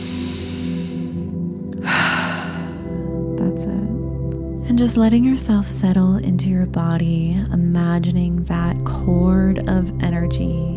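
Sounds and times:
breath drawn in through the nose and out through the mouth: 0.0s - 3.3s
steady low musical drone: 0.0s - 10.7s
speech: 4.8s - 10.7s.

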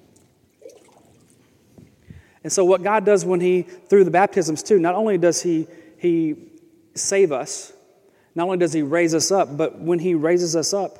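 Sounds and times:
water pouring into a small jar: 0.6s - 1.3s
speech: 2.4s - 7.8s, 8.4s - 10.9s.

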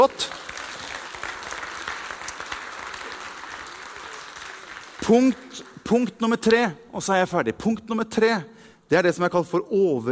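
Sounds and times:
speech: 0.0s - 0.4s, 5.1s - 10.0s
audience applause: 0.0s - 6.1s.

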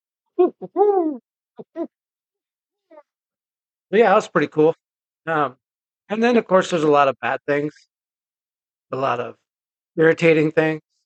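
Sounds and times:
man imitating owl hoots: 0.3s - 1.9s
speech: 0.4s - 2.0s, 3.9s - 7.9s, 8.9s - 9.4s, 10.0s - 10.8s.

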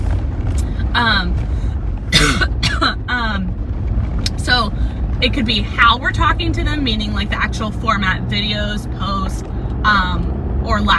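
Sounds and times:
low rumbling background: 0.0s - 10.9s
person coughing: 2.1s - 3.0s
rough throat clearing: 2.2s - 2.9s
speech: 5.2s - 10.9s.

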